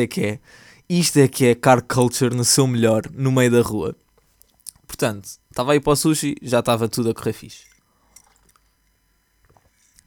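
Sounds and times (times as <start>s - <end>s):
speech: 0.0s - 4.0s, 5.0s - 7.7s
sipping tea with wet mouth clicks and slurps: 8.1s - 8.7s.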